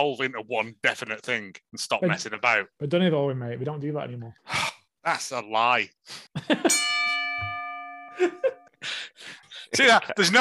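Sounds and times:
speech: 0.0s - 7.5s, 8.2s - 10.3s
pressed bell ringing: 6.6s - 8.8s.

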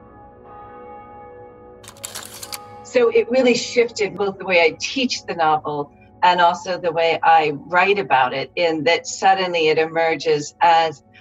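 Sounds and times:
church bells ringing: 0.0s - 4.4s
speech: 2.9s - 11.1s.

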